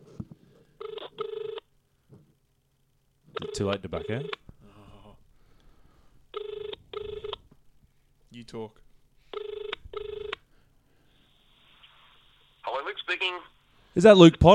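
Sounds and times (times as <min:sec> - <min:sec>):
phone ringback tone double bursts: 0:00.8 - 0:01.6, 0:03.3 - 0:04.4, 0:06.3 - 0:07.4, 0:09.3 - 0:10.4
speech: 0:03.6 - 0:04.4, 0:08.5 - 0:08.8, 0:13.2 - 0:14.5.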